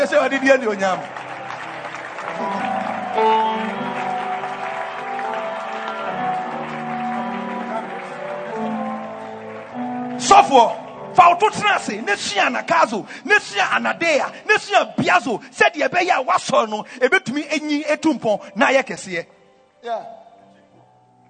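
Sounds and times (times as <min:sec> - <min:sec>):
speech: 0:00.0 - 0:01.2, 0:10.3 - 0:20.2
crowd clapping hands: 0:00.0 - 0:15.3.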